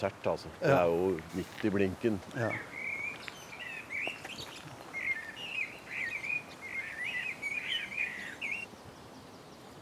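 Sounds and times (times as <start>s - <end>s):
speech: 0.0s - 2.7s
soft outdoor hiss: 0.0s - 9.7s
blackbird singing: 2.3s - 9.7s.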